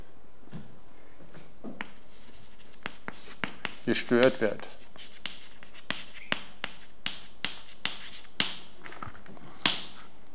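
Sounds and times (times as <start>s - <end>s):
pen on paper writing out a circuit diagram: 1.8s - 8.5s
speech: 3.9s - 4.8s.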